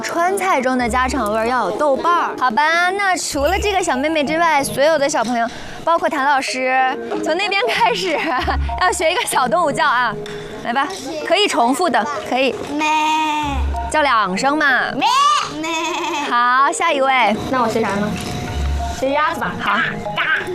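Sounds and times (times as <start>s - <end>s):
voices chattering: 0.0s - 20.5s
child imitating a sheep's bleat: 12.7s - 13.6s, 15.0s - 16.4s.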